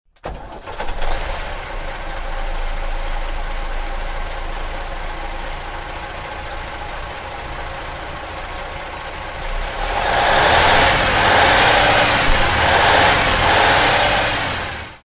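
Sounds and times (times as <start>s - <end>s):
Jelcz Ogorek bus: 0.1s - 15.0s.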